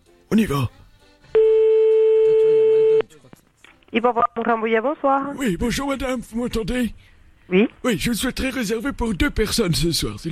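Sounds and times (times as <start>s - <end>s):
speech: 0.3s - 0.8s, 3.9s - 10.2s
telephone line tone while calling a restaurant: 1.4s - 3.0s.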